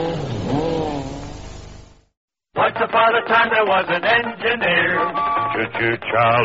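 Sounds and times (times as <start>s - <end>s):
Skoda Super Estelle car engine revving: 0.0s - 1.9s
speech: 2.8s - 6.4s.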